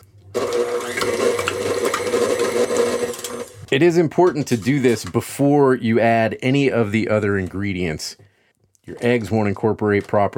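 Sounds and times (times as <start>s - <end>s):
electric mixer beating cream cheese in a bowl: 0.4s - 3.7s
speech: 3.7s - 8.2s, 8.9s - 10.3s.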